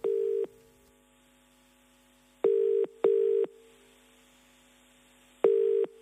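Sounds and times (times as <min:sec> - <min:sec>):
electronic phone tones of a call to an Italian restaurant in Melbourne: 0:00.0 - 0:00.5, 0:02.5 - 0:03.5, 0:05.4 - 0:06.0.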